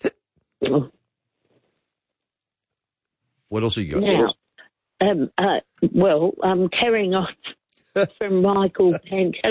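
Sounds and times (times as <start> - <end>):
hiccups: 0.0 - 0.9
speech: 0.7 - 0.9, 3.6 - 4.4, 5.0 - 7.4, 8.0 - 9.4.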